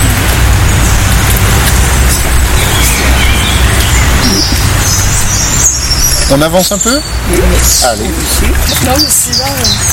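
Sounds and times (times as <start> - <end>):
European robin singing outdoors: 0.5 - 9.9
blackbird singing outdoors: 2.4 - 9.9
speech: 6.3 - 9.9.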